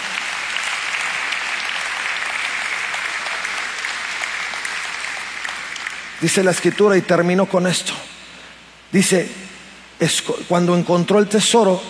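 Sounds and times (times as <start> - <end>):
large crowd applauding loudly: 0.0 - 6.8
speech: 6.2 - 8.1, 8.9 - 9.4, 10.0 - 11.8.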